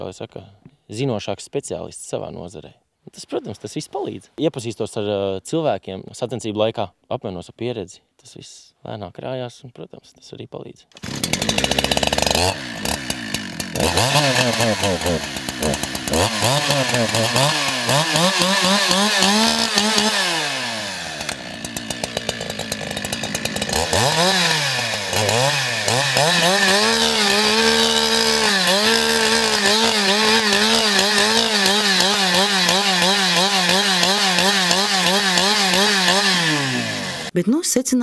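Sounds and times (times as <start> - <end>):
speech: 0.0 - 20.2, 37.6 - 38.0
chainsaw engine roaring as it cuts into wood: 11.0 - 37.4.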